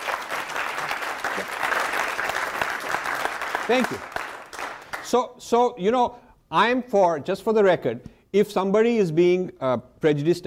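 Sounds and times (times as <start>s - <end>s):
audience applause with many hands clapping: 0.0s - 5.1s
speech: 1.4s - 1.6s, 3.7s - 4.2s, 5.1s - 10.4s.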